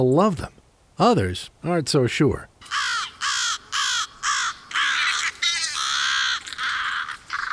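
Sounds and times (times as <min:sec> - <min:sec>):
speech: 0:00.0 - 0:02.8
crows cawing: 0:02.6 - 0:07.5.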